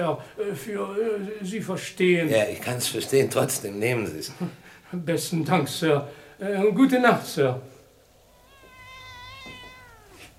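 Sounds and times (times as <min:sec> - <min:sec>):
speech: 0:00.0 - 0:07.7
faint steady hiss: 0:00.0 - 0:10.3
young cat meowing: 0:08.2 - 0:10.3.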